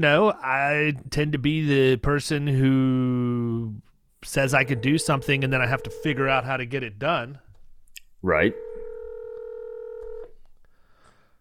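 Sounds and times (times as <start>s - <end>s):
speech: 0.0s - 7.4s, 8.2s - 8.6s
phone ringing with an incoming call: 4.5s - 6.5s, 8.5s - 10.3s.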